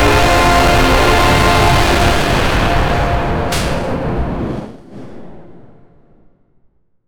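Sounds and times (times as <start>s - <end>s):
asteroid destruction: 0.0s - 4.8s.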